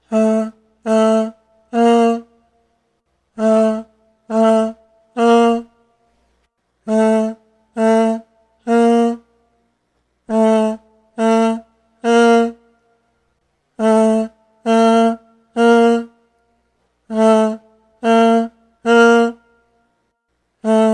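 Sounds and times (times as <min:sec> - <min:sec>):
voice: 0:00.0 - 0:02.3, 0:03.4 - 0:05.7, 0:06.8 - 0:09.2, 0:10.3 - 0:12.6, 0:13.8 - 0:16.1, 0:17.1 - 0:19.4, 0:20.6 - 0:20.9.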